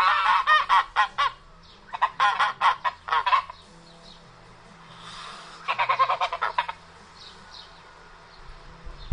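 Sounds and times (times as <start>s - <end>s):
Italian domestic goose honking: 0.0s - 3.7s, 5.0s - 6.9s.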